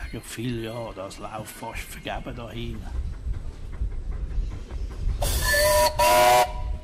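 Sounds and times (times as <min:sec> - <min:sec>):
train rumbling along the rails with rhythmic clatter: 0:00.0 - 0:06.8
speech: 0:00.1 - 0:03.1
loud hissing steam whistle blasts: 0:05.2 - 0:06.8.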